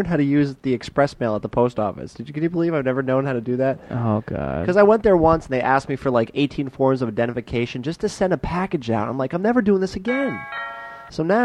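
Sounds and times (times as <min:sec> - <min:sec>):
speech: 0:00.0 - 0:11.4
doorbell-style ding-dong chime sound effect: 0:10.1 - 0:11.2.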